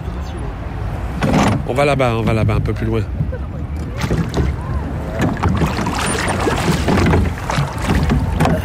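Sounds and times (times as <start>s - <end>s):
light wind: 0.0s - 8.6s
speech: 1.7s - 3.5s
water splashing and lapping around a small rowboat: 3.2s - 8.6s
rowboat oar strokes: 3.8s - 8.6s.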